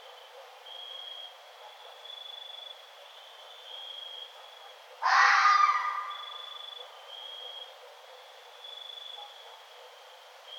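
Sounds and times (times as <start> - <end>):
red fox raspy scream: 5.0 - 6.6.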